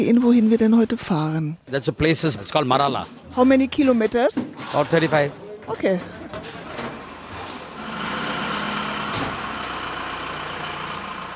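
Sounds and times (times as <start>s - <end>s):
speech: 0.0s - 6.6s
engines of trucks loaded with food vats, chairs and tables starting: 4.6s - 11.3s.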